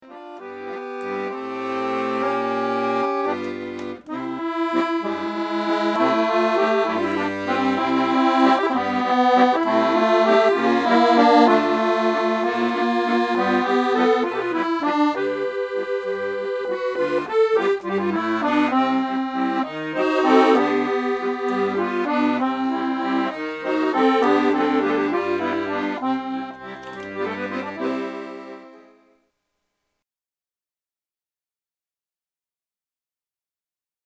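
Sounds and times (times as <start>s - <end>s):
French accordionist playing accordion: 0.0s - 29.2s.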